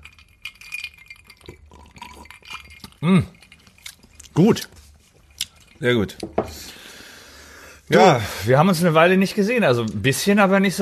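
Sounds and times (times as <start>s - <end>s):
liquid sounds: 0.0s - 6.3s
whisky glasses clinking in a toast: 0.0s - 6.8s
faint handling sounds: 2.6s - 6.8s
speech: 3.0s - 3.4s, 4.4s - 4.8s, 5.8s - 6.8s, 7.9s - 10.8s.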